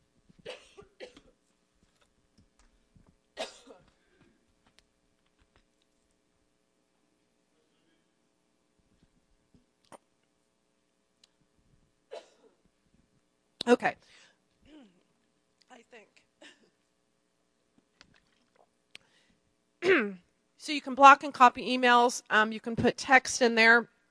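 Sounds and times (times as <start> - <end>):
quiet room hum: 0.0 - 24.0
person coughing: 0.5 - 1.3, 3.4 - 3.9, 12.1 - 12.6, 16.4 - 16.8, 19.8 - 20.2
speech: 13.7 - 14.2, 20.0 - 23.9.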